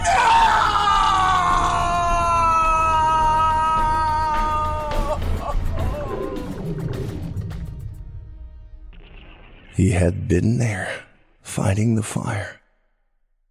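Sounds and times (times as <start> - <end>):
man screaming in agony: 0.0 - 6.8
man ragged cries: 0.1 - 6.6
speech: 9.8 - 11.0, 11.6 - 12.6.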